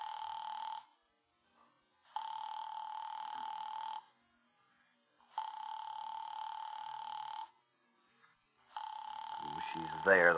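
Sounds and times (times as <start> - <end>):
telephone ringing unanswered on the line: 0.0 - 1.0, 2.1 - 4.1, 5.3 - 7.6, 8.7 - 10.3
speech: 10.0 - 10.3.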